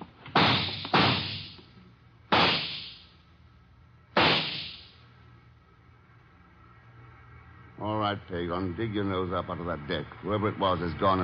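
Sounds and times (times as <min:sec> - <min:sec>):
gunshots with a short decaying echo: 0:00.3 - 0:01.6, 0:02.3 - 0:03.0, 0:04.2 - 0:04.9
speech: 0:07.8 - 0:11.2.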